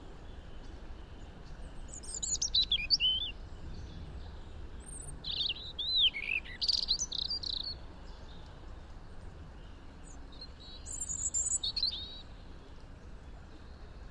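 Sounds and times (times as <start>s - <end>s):
faint low background noise: 0.0s - 14.0s
European robin Erithacus rubecula song: 0.2s - 3.4s, 4.8s - 8.4s, 10.1s - 12.3s.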